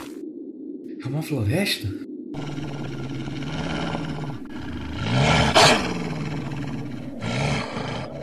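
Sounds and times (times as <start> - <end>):
speech: 1.1 - 3.3
ice wolves growling and snarling: 2.3 - 8.2.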